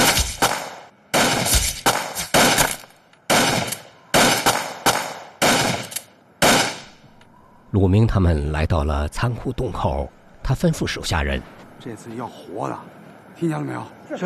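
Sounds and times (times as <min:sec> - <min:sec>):
gunfire as agents shoot at bandits: 0:00.0 - 0:07.0
speech: 0:07.7 - 0:14.2.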